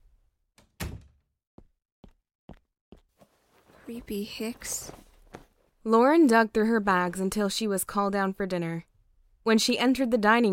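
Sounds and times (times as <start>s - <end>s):
door closing shut with a loud heavy thud: 0.6s - 1.2s
speech: 3.9s - 5.0s, 5.8s - 10.5s.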